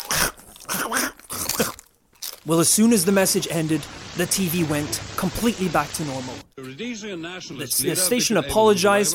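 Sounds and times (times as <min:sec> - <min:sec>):
munching on crunchy Cheetos: 0:00.0 - 0:02.6
speech: 0:02.5 - 0:09.1.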